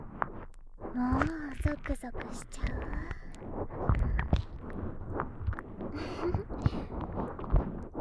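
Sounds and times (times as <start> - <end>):
soap foam crackling and popping while cleaning ears: 0.0 - 8.0
speech: 1.0 - 8.0.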